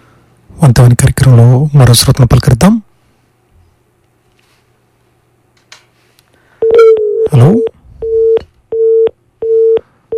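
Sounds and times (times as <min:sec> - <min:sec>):
speech: 0:00.6 - 0:02.8, 0:07.3 - 0:07.8
phone busy tone after a caller's dropped line: 0:06.6 - 0:10.1.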